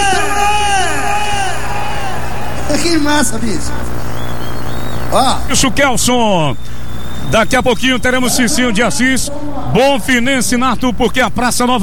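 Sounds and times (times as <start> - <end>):
big crowd shouting and cheering: 0.0 - 8.2
speech: 2.9 - 3.9, 5.1 - 11.8.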